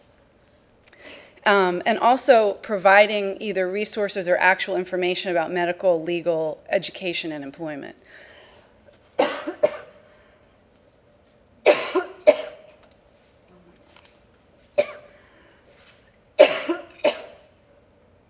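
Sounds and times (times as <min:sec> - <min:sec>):
speech: 0:01.5 - 0:08.3
person clearing throat: 0:09.2 - 0:10.0, 0:11.7 - 0:12.7, 0:14.8 - 0:15.1, 0:16.4 - 0:17.5
person coughing: 0:09.2 - 0:10.0, 0:11.7 - 0:12.8, 0:14.8 - 0:15.2, 0:16.4 - 0:17.5.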